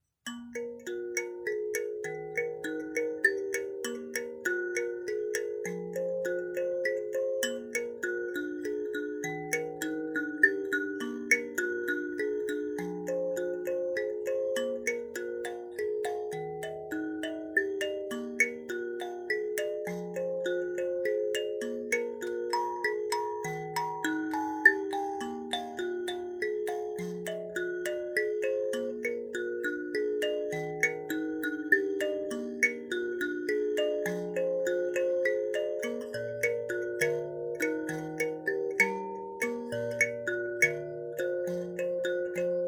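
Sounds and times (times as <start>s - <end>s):
mbira: 0.0s - 42.6s.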